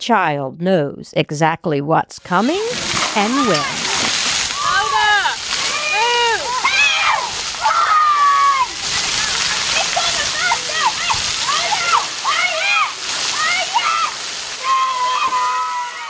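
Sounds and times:
speech: 0:00.0 - 0:03.9
giant bucket dumping water at a splash pad: 0:02.2 - 0:16.0
many children shrieking and squealing excitedly: 0:03.3 - 0:16.0.

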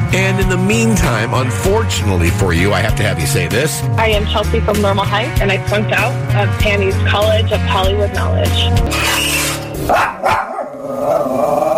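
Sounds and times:
speech: 0:00.1 - 0:10.4
dog barking: 0:09.9 - 0:11.3.

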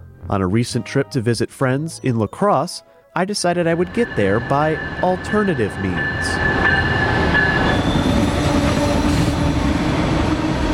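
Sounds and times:
speech: 0:00.3 - 0:06.6
passenger train rolling along the rails: 0:03.6 - 0:10.7
train wheel squeal: 0:06.0 - 0:09.3.

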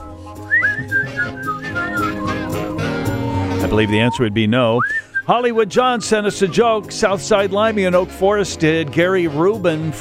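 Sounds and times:
several people whistling a wavering tune: 0:00.0 - 0:04.2, 0:04.8 - 0:07.0
speech: 0:03.7 - 0:09.9.

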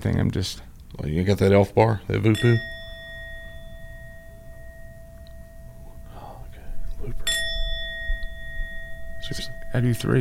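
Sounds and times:
speech: 0:00.0 - 0:02.8, 0:09.8 - 0:10.1
bright bell ringing: 0:02.1 - 0:10.1.

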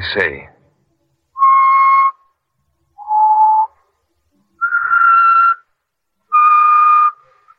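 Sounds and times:
person whistling a short tune: 0:01.4 - 0:02.3, 0:03.0 - 0:03.8, 0:04.6 - 0:05.6, 0:06.3 - 0:07.2.

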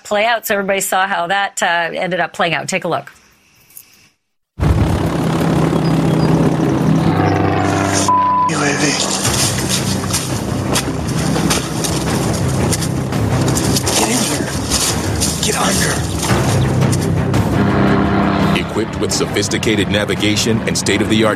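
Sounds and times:
speech: 0:00.1 - 0:03.2, 0:18.8 - 0:21.3
Gray Eagle military drone engine and propeller hum flying overhead: 0:04.6 - 0:21.3.

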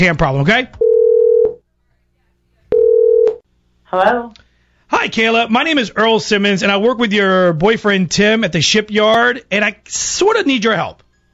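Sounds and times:
speech: 0:00.0 - 0:00.8, 0:03.9 - 0:11.0
electronic phone ringback tones of an outgoing call: 0:00.8 - 0:01.6, 0:02.7 - 0:03.4.

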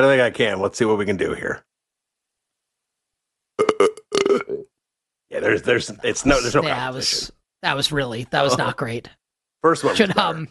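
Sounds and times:
speech: 0:00.0 - 0:01.7, 0:05.3 - 0:10.4
man burping: 0:03.6 - 0:04.7.

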